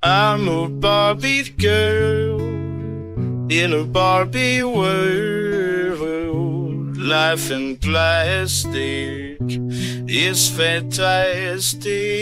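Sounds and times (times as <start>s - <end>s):
AI-generated voice singing a bright bouncy pop melody: 0.0s - 2.8s, 3.5s - 12.1s
speech: 0.1s - 2.6s, 3.5s - 12.1s.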